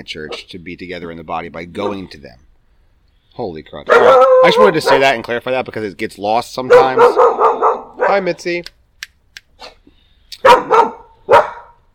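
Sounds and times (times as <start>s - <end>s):
speech: 0.0s - 2.5s, 3.4s - 8.8s
guard dog barking: 3.9s - 5.2s, 6.6s - 8.3s, 10.4s - 11.8s.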